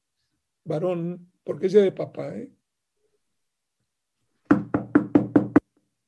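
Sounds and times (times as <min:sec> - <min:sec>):
speech: 0:00.7 - 0:02.6
firm knocks on a door: 0:04.5 - 0:05.7.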